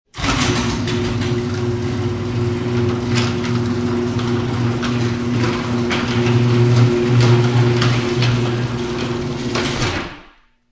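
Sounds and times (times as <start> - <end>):
household garage door closing heard from inside the garage: 0.1 - 10.4.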